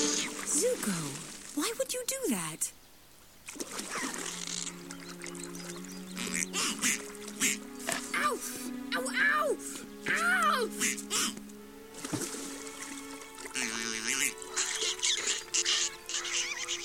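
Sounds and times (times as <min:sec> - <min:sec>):
splashing and trickling water: 0:00.0 - 0:01.8, 0:03.4 - 0:08.7, 0:10.1 - 0:16.8
speech: 0:00.6 - 0:02.8, 0:03.5 - 0:04.5
angry mother turtle duck quacking and squawking while being fed: 0:06.2 - 0:08.0, 0:10.1 - 0:11.4, 0:13.5 - 0:16.8.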